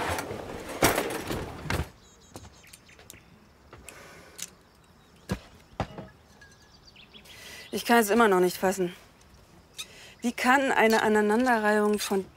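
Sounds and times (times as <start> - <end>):
kitchen drawer sliding open with a rough scraping rush: 0.0 - 1.9
utensils clicking and clinking as they are rummaged through: 5.9 - 6.8
speech: 7.7 - 9.0, 10.2 - 12.3.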